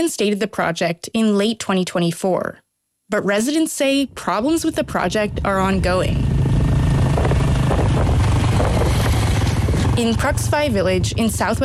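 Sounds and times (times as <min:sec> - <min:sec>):
speech: 0:00.0 - 0:06.4, 0:10.0 - 0:11.6
motorbike engine drone while riding: 0:04.1 - 0:11.6
rushing wind buffeting the microphone: 0:04.8 - 0:10.0.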